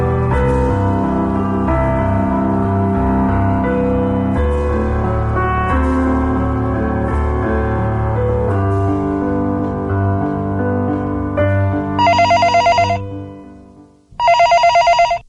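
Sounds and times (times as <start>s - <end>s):
sustained musical backdrop: 0.0s - 14.1s
telephone at a boarding house ringing: 12.0s - 13.2s, 14.2s - 15.2s.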